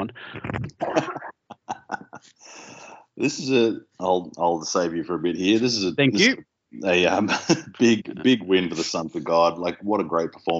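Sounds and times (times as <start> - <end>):
speech: 0.0 - 1.4, 3.2 - 10.5
person coughing forcefully: 0.8 - 3.4, 7.2 - 9.1
laughter: 0.8 - 10.5.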